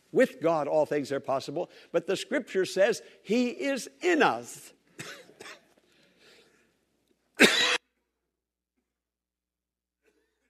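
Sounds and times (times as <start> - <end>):
speech: 0.1 - 5.6
person coughing: 5.0 - 5.8, 7.4 - 8.0.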